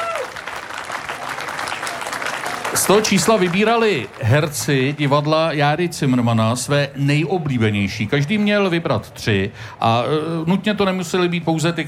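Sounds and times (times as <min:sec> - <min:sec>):
theatre audience applauding at an anniversary celebration: 0:00.0 - 0:05.7
speech: 0:02.8 - 0:11.8.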